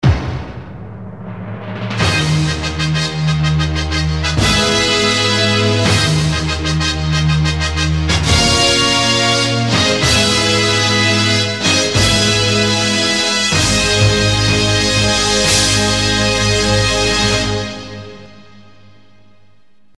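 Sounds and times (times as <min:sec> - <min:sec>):
brass fanfare: 0:02.0 - 0:19.3.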